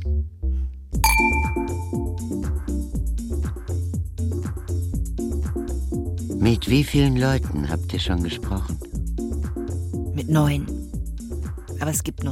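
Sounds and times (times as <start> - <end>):
glasses clinking in a toast: 1.0 - 2.0
rhythmic music with a thumping low beat: 1.0 - 12.2
speech: 6.5 - 8.9, 10.3 - 10.8, 11.8 - 12.2.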